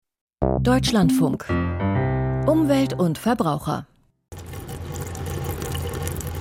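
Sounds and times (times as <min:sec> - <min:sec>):
speech: 0:00.4 - 0:03.9
water splashing from a public drinking fountain in Berlin: 0:04.3 - 0:06.3.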